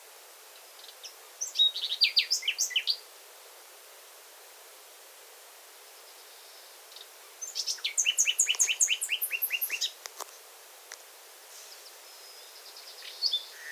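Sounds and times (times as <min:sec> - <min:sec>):
common nightingale Luscinia megarhynchos singing: 0:00.8 - 0:03.0, 0:06.9 - 0:10.0, 0:11.8 - 0:13.7.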